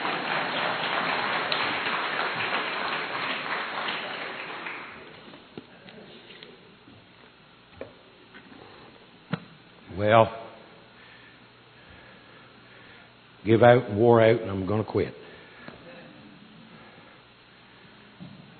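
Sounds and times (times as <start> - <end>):
audience applause: 0.0 - 5.3
speech: 10.0 - 10.4, 13.5 - 15.3.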